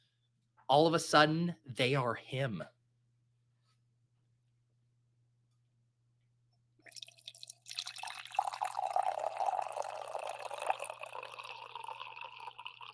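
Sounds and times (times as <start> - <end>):
speech: 0.7 - 2.8
coffee pouring into a cup: 6.8 - 12.9.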